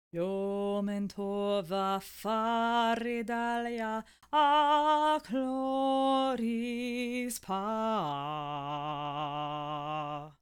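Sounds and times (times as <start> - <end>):
person singing: 0.1 - 10.3.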